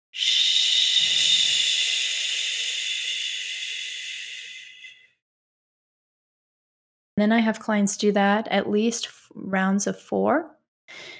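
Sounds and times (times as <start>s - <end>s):
speech: 0.1s - 0.4s, 7.2s - 11.1s
slow exhale hissing through the teeth: 0.1s - 5.1s.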